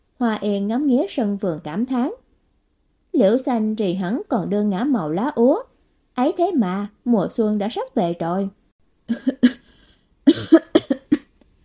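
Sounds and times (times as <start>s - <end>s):
speech: 0.2s - 2.2s, 3.2s - 9.6s
woman coughing heavily: 9.1s - 11.3s.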